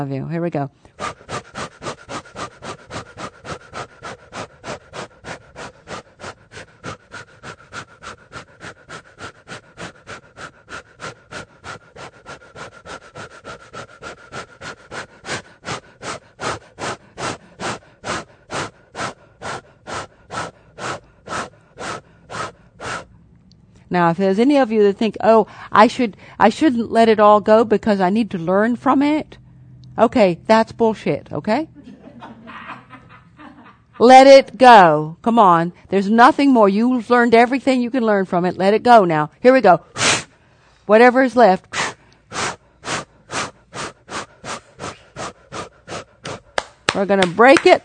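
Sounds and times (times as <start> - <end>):
speech: 0.0 - 1.2, 23.9 - 29.4, 30.0 - 31.7, 34.0 - 40.0, 40.9 - 41.8, 47.0 - 47.8
rapid forceful breaths of a breathing exercise: 0.8 - 23.2, 25.4 - 26.6, 39.8 - 47.8
laughter: 31.8 - 34.0.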